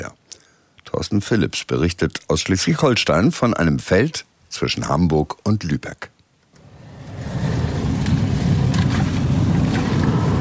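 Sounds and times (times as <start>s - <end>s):
speech: 1.0s - 6.1s
sugar beet harvesting machines driving over fields in Herzogtum Lauenburg, northern Germany: 6.6s - 10.3s.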